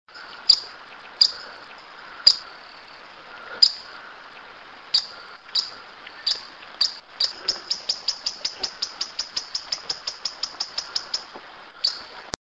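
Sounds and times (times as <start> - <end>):
yellow-lored tody-flycatcher Todirostrum poliocephalum song: 0.1 - 12.2.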